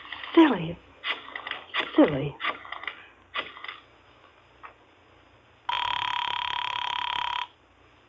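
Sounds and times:
speech: 0:00.4 - 0:00.9, 0:02.0 - 0:02.6
telephone being dialed with rapid mechanical clicking: 0:05.7 - 0:07.5.

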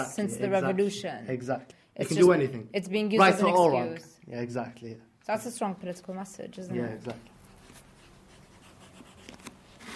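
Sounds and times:
speech: 0:00.0 - 0:07.4
pencil sketching on paper: 0:08.2 - 0:09.9.

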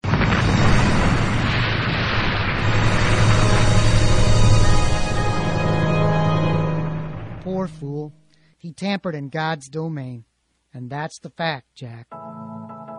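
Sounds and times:
huge atomic explosion roaring: 0:00.0 - 0:07.9
speech: 0:07.6 - 0:12.4.

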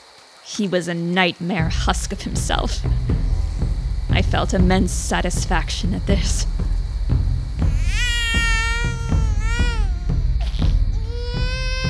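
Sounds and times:
speech: 0:00.6 - 0:03.4, 0:04.2 - 0:06.6
rhythmic thumping: 0:01.6 - 0:11.8
newborn baby crying: 0:07.6 - 0:11.8.

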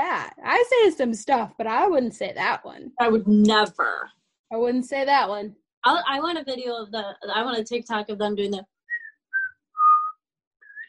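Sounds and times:
speech: 0:00.2 - 0:08.7
person whistling a tune: 0:08.9 - 0:10.8.

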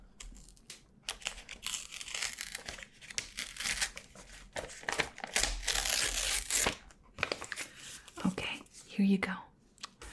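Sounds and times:
paper being torn out of a pad in a library: 0:00.4 - 0:07.5
speech: 0:09.0 - 0:09.5.

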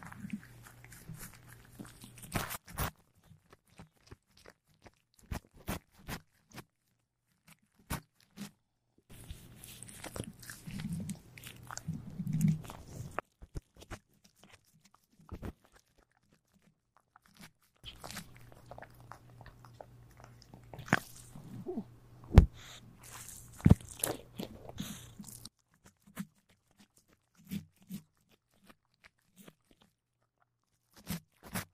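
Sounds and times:
cats eating with crunches and bites: 0:00.0 - 0:21.8, 0:22.6 - 0:31.7
low steady hum, likely purring: 0:09.1 - 0:13.2, 0:17.8 - 0:25.5.

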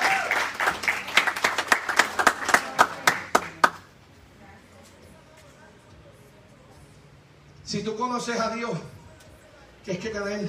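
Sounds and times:
audience applauding: 0:00.0 - 0:03.9
speech: 0:07.7 - 0:08.9, 0:09.8 - 0:10.4.

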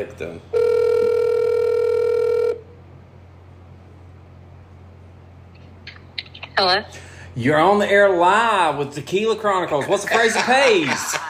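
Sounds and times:
speech: 0:00.0 - 0:00.7, 0:06.6 - 0:11.2
buzzy electronic telephone ringback tone over the line: 0:00.5 - 0:02.7
laughter: 0:09.7 - 0:11.2.

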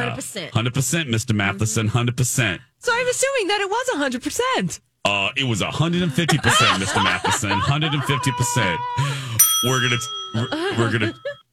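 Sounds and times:
speech: 0:00.0 - 0:11.4
laughter: 0:05.8 - 0:09.4, 0:10.0 - 0:11.4
bright metallic bell ding: 0:09.4 - 0:11.4.

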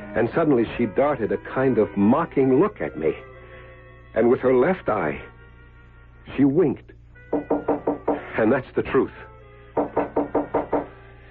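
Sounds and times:
speech: 0:00.2 - 0:03.3, 0:04.2 - 0:05.3, 0:06.3 - 0:07.4, 0:08.4 - 0:10.0
knocking on a door: 0:07.3 - 0:08.3, 0:09.8 - 0:11.0.

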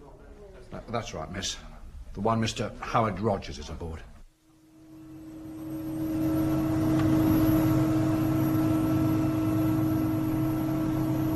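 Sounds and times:
speech: 0:00.7 - 0:04.1
helicopter flying overhead: 0:04.8 - 0:11.3.

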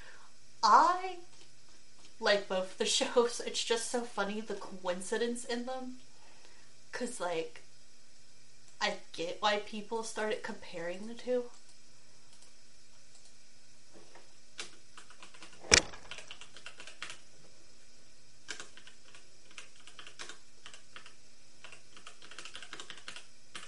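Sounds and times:
faint low hum: 0:00.0 - 0:23.6
speech: 0:02.2 - 0:06.1, 0:07.0 - 0:07.6, 0:08.8 - 0:11.6
typing on a computer keyboard: 0:14.6 - 0:17.2, 0:18.5 - 0:23.6
louder thump: 0:15.6 - 0:16.2.

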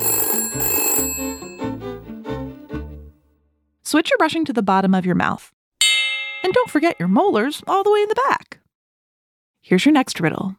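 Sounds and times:
telephone bell ringing: 0:00.0 - 0:02.0
speech: 0:03.9 - 0:05.6, 0:06.4 - 0:08.5, 0:09.6 - 0:10.5.

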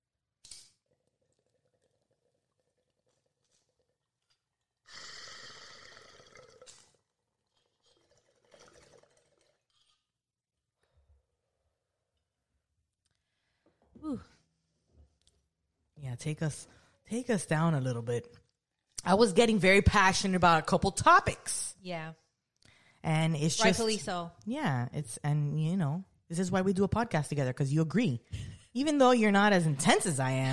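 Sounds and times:
water bong bubbling: 0:00.9 - 0:10.0
rushing exhale: 0:04.9 - 0:06.5
breathy inhales: 0:04.9 - 0:06.6, 0:22.7 - 0:23.0
speech: 0:14.0 - 0:14.4, 0:16.2 - 0:22.2, 0:23.0 - 0:30.5.

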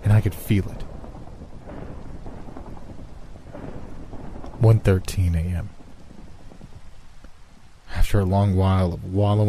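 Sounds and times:
rumble of thunder: 0:00.0 - 0:08.3
heavy rain: 0:00.0 - 0:09.4
speech: 0:00.2 - 0:00.9, 0:04.6 - 0:05.8, 0:08.1 - 0:09.4.

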